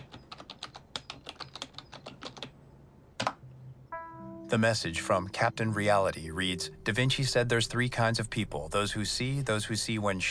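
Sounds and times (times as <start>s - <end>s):
keyboard typing: 0.0s - 2.6s
speech: 4.5s - 10.2s.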